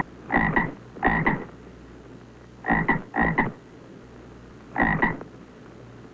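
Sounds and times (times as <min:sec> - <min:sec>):
frog: 0:00.0 - 0:01.5, 0:02.6 - 0:03.6, 0:04.7 - 0:05.3.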